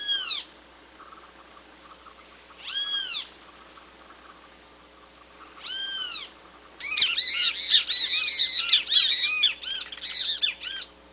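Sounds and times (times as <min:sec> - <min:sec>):
great kiskadee harsh arched calls: 0:00.0 - 0:11.0
steady background hiss and hum: 0:00.0 - 0:11.1.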